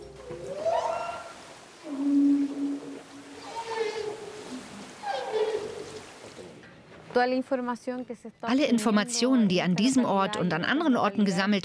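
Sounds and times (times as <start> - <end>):
faint underwater hiss: 0.0 - 11.5
whale song recorded underwater: 0.4 - 6.0
speech: 7.2 - 11.6.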